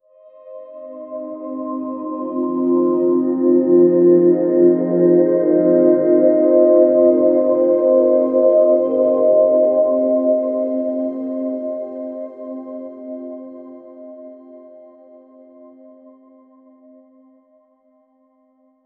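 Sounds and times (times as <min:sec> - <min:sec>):
soft ethereal pads: 0:00.2 - 0:17.7.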